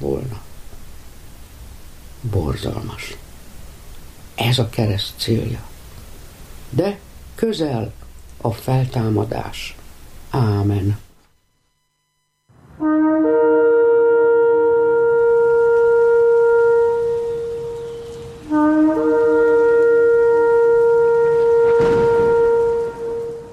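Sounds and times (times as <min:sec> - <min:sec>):
speech: 0:00.0 - 0:00.5, 0:02.2 - 0:03.3, 0:04.4 - 0:05.7, 0:06.7 - 0:11.0
ceremonial horn blasts for the Feast of Trumpets: 0:12.4 - 0:23.5.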